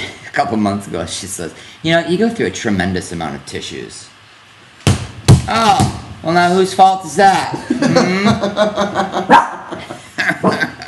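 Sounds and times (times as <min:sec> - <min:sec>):
speech: 0:00.4 - 0:04.1, 0:05.5 - 0:10.7
laughter: 0:07.5 - 0:10.8
dog barking and yipping: 0:09.3 - 0:09.7.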